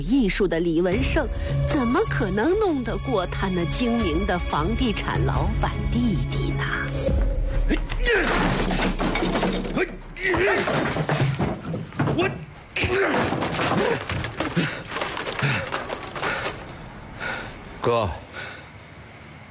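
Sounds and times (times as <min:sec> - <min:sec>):
speech: 0:00.0 - 0:07.0, 0:09.8 - 0:11.2, 0:12.2 - 0:14.7, 0:17.8 - 0:18.2
3D architectural scale model being smashed apart: 0:08.1 - 0:16.8.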